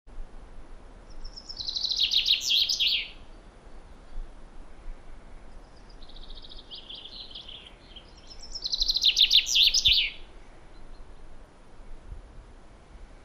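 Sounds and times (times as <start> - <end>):
Common chaffinch Fringilla coelebs singing descending cascade: 1.1 - 3.4, 5.6 - 11.2.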